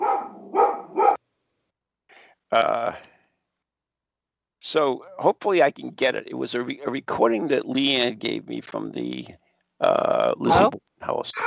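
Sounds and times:
dog barking: 0.0s - 1.2s
dog yipping: 0.0s - 1.2s
speech: 2.5s - 3.1s, 4.7s - 11.4s.

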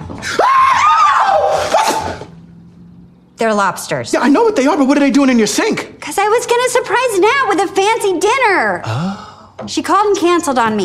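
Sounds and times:
man screaming in surprise: 0.3s - 2.1s
speech: 3.4s - 10.8s.

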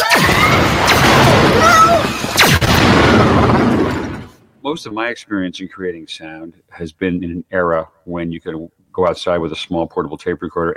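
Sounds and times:
laser-gun zaps made by sending sound down a long wire: 0.0s - 3.0s
speech: 4.7s - 10.7s.

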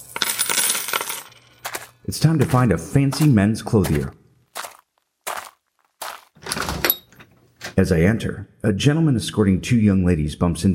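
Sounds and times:
coins clattering into a bucket: 0.0s - 2.0s
speech: 2.1s - 4.2s, 7.8s - 10.7s.

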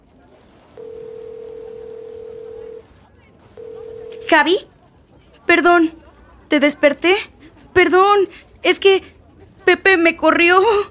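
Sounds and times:
telephone dial tone while placing a call: 0.8s - 2.8s, 3.6s - 4.4s
speech: 4.3s - 4.7s, 5.5s - 9.1s, 9.7s - 10.9s.

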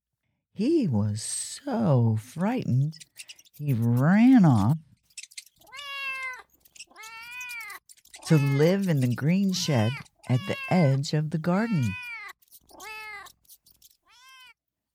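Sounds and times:
speech: 0.6s - 4.9s, 8.3s - 12.0s
marmalade cat meowing: 5.4s - 14.6s.

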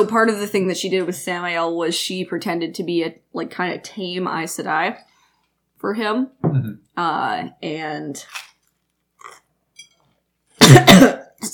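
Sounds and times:
speech: 0.0s - 5.1s, 5.8s - 8.5s
person coughing and choking on food: 10.6s - 11.5s.

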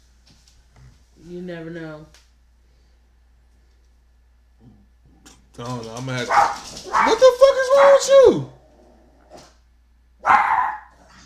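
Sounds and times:
speech: 1.3s - 2.2s, 5.6s - 8.6s
dog yipping softly: 6.3s - 8.1s, 10.2s - 10.9s
dog barking: 6.3s - 8.2s, 10.2s - 11.2s.

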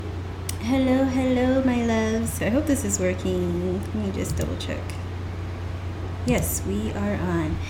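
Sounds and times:
air conditioning hum: 0.0s - 7.6s
speech: 0.6s - 5.1s, 6.3s - 7.6s
dishwasher running: 1.1s - 5.0s.

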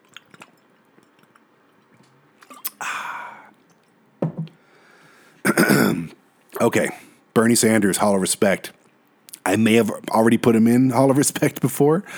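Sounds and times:
lip and mouth clicks: 0.0s - 2.8s
person slurping a sip of water: 0.0s - 3.8s
person gulping swallows of water: 2.4s - 3.4s, 5.5s - 7.0s
speech: 6.6s - 8.8s, 9.5s - 12.1s.

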